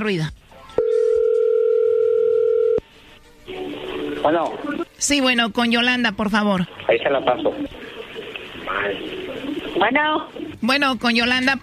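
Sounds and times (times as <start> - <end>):
speech: 0.0 - 0.4, 4.2 - 7.8, 8.7 - 9.2, 9.8 - 11.6
telephone dial tone while a call is placed: 0.8 - 2.8.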